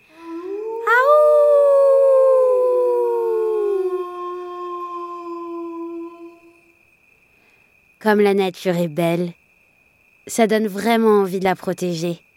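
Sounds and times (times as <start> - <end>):
wolf howling at night in a forest: 0.0 - 6.7
speech: 8.0 - 9.4, 10.3 - 12.2.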